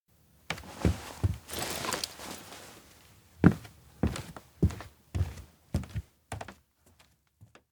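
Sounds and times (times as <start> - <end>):
footsteps indoors in an abandoned cafe: 0.5 - 7.6
bag being grabbed: 0.7 - 2.9.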